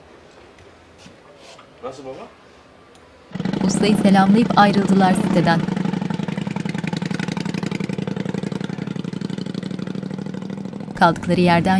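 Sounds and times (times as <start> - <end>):
speech: 1.8 - 2.4, 3.6 - 5.7, 11.0 - 11.7
car engine running as the driver steps on the gas: 3.3 - 11.7.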